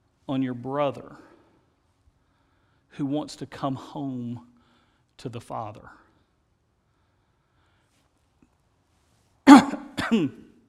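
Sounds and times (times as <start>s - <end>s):
speech: 0.3s - 1.3s, 3.0s - 4.5s, 5.2s - 6.0s, 10.1s - 10.4s
person coughing: 9.5s - 10.5s
rough voiced throat clearing: 9.5s - 10.6s.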